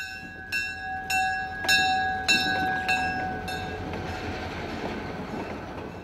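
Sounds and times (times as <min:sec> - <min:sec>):
train bell clanging: 0:00.0 - 0:03.9
diesel locomotive pulling passenger cars around a railway museum's grounds: 0:00.0 - 0:06.0.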